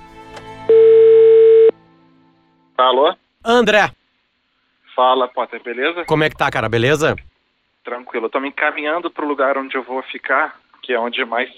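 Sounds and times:
telephone dial tone while placing a call: 0:00.7 - 0:01.7
faint noise: 0:00.7 - 0:11.5
speech: 0:02.8 - 0:04.0, 0:05.0 - 0:11.5.

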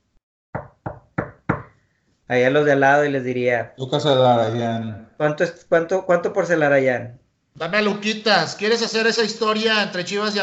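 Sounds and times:
firm knocking on a door: 0:00.5 - 0:01.7
speech: 0:02.3 - 0:10.4.

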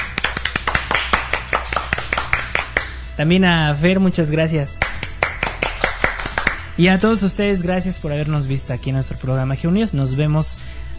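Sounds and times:
few people clapping: 0:00.0 - 0:03.0, 0:04.7 - 0:06.7
speech: 0:03.2 - 0:04.9, 0:06.8 - 0:10.8.

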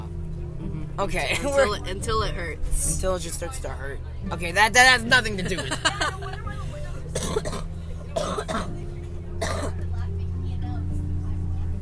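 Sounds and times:
steady low hum: 0:00.0 - 0:11.7
speech: 0:01.0 - 0:06.4
laughter: 0:01.1 - 0:01.9, 0:05.1 - 0:07.2
sick person coughing heartily: 0:07.1 - 0:08.8, 0:09.4 - 0:09.8.

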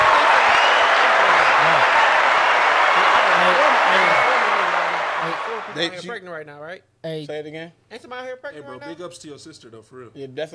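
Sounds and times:
crowd applauding: 0:00.0 - 0:06.0.

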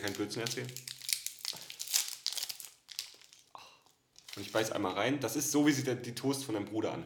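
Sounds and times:
speech: 0:00.0 - 0:00.9, 0:04.4 - 0:07.0
crinkly plastic snack wrapper being torn open: 0:00.0 - 0:03.6, 0:04.2 - 0:04.8.

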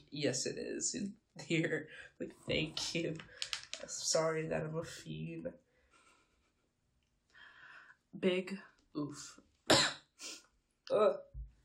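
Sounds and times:
speech: 0:00.1 - 0:05.6, 0:08.1 - 0:09.9, 0:10.9 - 0:11.3
person coughing: 0:09.7 - 0:10.4.

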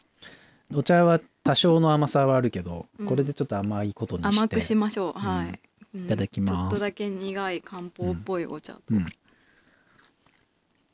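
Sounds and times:
speech: 0:00.7 - 0:09.2
short voiced hum: 0:04.2 - 0:07.0, 0:07.7 - 0:09.2
chewing milk chocolate: 0:09.8 - 0:10.9.

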